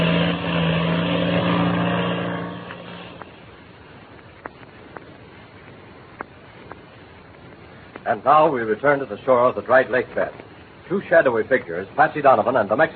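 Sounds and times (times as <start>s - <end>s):
small black two-seater airplane engine droning on takeoff: 0.0s - 3.8s
speech: 8.1s - 12.9s.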